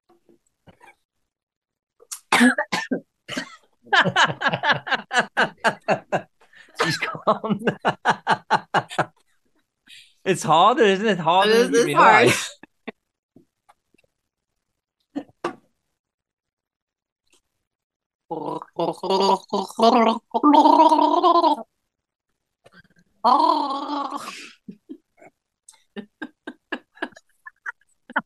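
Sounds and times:
speech: 0:02.4 - 0:03.0, 0:07.3 - 0:07.8, 0:10.3 - 0:12.6
laughter: 0:03.3 - 0:09.1, 0:11.2 - 0:12.9, 0:26.0 - 0:28.2
person gargling: 0:18.3 - 0:21.6, 0:23.2 - 0:24.3.

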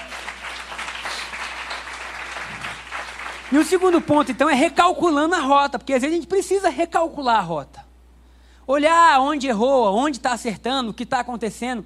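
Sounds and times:
crowd applauding: 0:00.0 - 0:04.4
speech: 0:03.5 - 0:07.8, 0:08.7 - 0:11.8.

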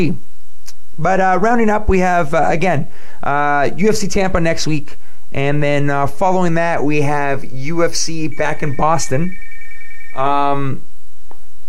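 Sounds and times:
speech: 0:00.0 - 0:00.2, 0:01.0 - 0:09.4, 0:10.2 - 0:10.9
thin high beep: 0:08.1 - 0:10.6
telephone ringing in a buzzy electronic burst: 0:08.3 - 0:10.5.

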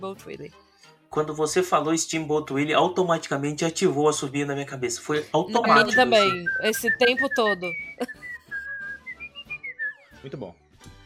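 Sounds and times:
speech: 0:00.0 - 0:08.2, 0:10.2 - 0:10.6
person whistling a short lilting melody: 0:05.6 - 0:10.2.

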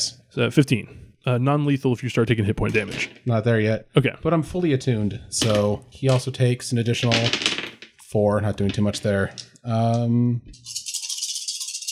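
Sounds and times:
speech: 0:00.4 - 0:07.5, 0:08.1 - 0:10.9
large handful of dice shaken and tumbling: 0:02.8 - 0:03.2, 0:05.4 - 0:09.6, 0:10.6 - 0:11.9.

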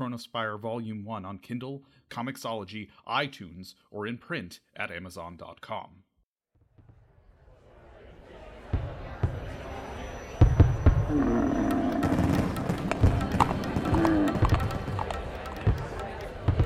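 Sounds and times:
speech: 0:00.1 - 0:06.0
murmur of voices and crowd noise: 0:07.6 - 0:16.6
fireworks booming and crackling: 0:08.6 - 0:16.6.

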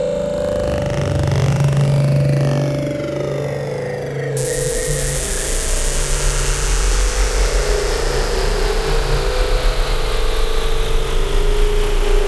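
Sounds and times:
sweeping swirling synth tones: 0:00.1 - 0:08.6
rumbling engine-like low hum: 0:00.1 - 0:10.5
dense droning synth atmosphere with mid-pitched tone: 0:00.1 - 0:12.2.

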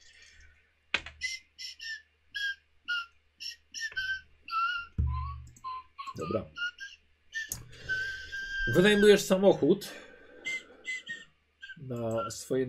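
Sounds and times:
person whistling a childhood melody: 0:01.2 - 0:09.3, 0:10.4 - 0:12.4
dull thumps: 0:04.9 - 0:05.6
speech: 0:06.2 - 0:06.6, 0:08.7 - 0:10.0, 0:11.9 - 0:12.6.

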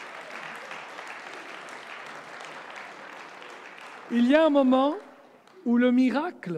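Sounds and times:
crowd applauding a speaker: 0:00.0 - 0:05.9
speech: 0:04.1 - 0:06.5.

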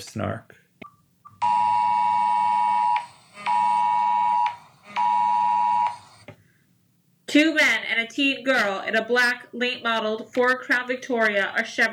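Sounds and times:
speech: 0:00.0 - 0:00.6, 0:07.3 - 0:11.9
Amber Alert emergency alert tone: 0:01.4 - 0:06.1.

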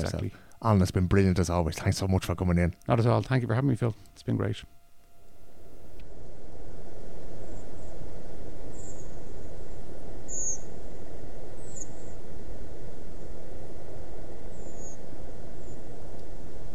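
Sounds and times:
speech: 0:00.0 - 0:04.8
redwings giving thin high seep calls flying overhead: 0:10.3 - 0:10.7.

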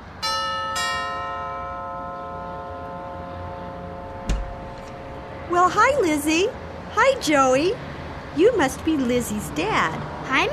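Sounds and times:
two-note chime doorbell ringing: 0:00.2 - 0:04.6
dull thump: 0:04.2 - 0:04.9
speech: 0:05.6 - 0:10.5.

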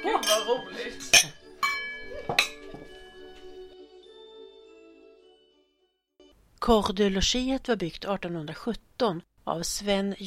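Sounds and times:
glasses clinking in a toast: 0:00.0 - 0:03.4
speech: 0:00.3 - 0:01.4, 0:06.6 - 0:10.2.

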